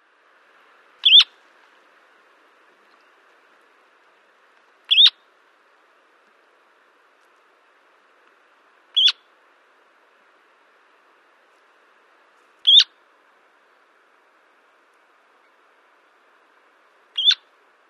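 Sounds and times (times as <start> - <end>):
Semipalmated Plover calling: 1.0 - 1.3, 4.9 - 5.2, 9.0 - 9.3, 12.6 - 12.9, 17.2 - 17.5.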